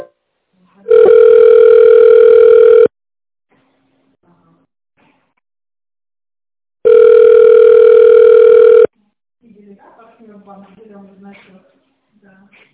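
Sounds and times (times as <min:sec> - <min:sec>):
ringback tone on a telephone line while a call is connected: 0:00.9 - 0:02.9, 0:06.8 - 0:08.9.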